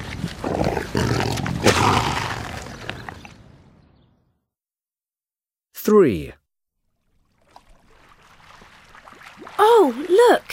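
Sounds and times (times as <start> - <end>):
eating lion roaring: 0.3 - 3.3
speech: 1.6 - 2.2, 5.9 - 6.4, 9.6 - 10.5.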